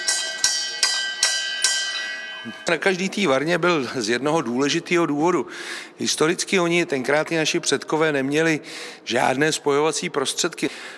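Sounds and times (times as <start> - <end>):
brewhouse bell rung rapidly: 0.0 - 3.6
speech: 2.4 - 10.9.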